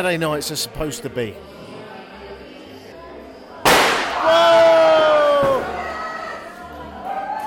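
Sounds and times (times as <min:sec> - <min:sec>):
speech: 0:00.0 - 0:01.6, 0:04.2 - 0:04.7
crowd noise and voices: 0:00.0 - 0:07.4
gunpowder packet exploding in a bed of clay: 0:03.6 - 0:04.3.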